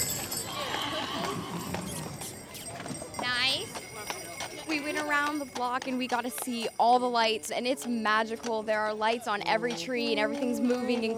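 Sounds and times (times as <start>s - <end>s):
busy street noise: 0.0s - 11.1s
horse hooves clip-clopping during a holiday carriage ride around a city block: 0.0s - 11.1s
speech: 5.2s - 11.1s.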